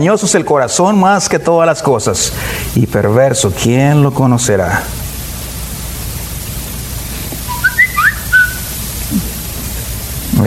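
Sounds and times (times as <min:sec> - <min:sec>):
speech: 0:00.0 - 0:05.0
person whistling short sliding notes: 0:07.5 - 0:08.7.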